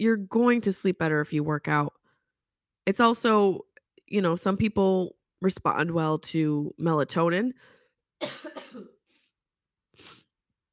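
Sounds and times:
speech: 0.0s - 2.0s, 2.8s - 8.9s
harsh rough coughing: 8.2s - 9.0s
short breathy rasp: 10.0s - 10.3s.

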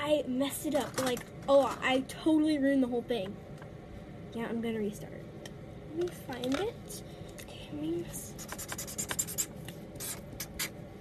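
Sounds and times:
soft hum: 0.0s - 10.9s
speech: 0.1s - 3.4s, 4.3s - 5.3s, 6.0s - 8.7s
pen scribbling over a drawing on paper: 8.4s - 10.7s.

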